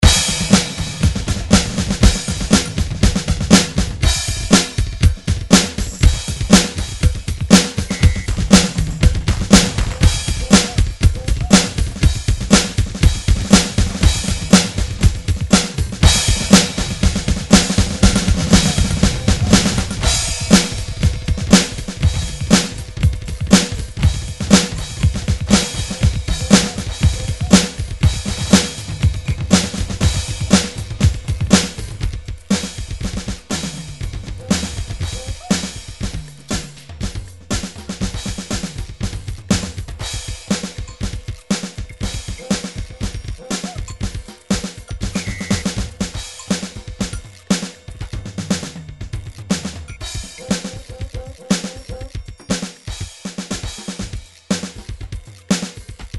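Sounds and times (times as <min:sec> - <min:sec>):
rock drum groove MIDI loops: 0:00.0 - 0:56.1.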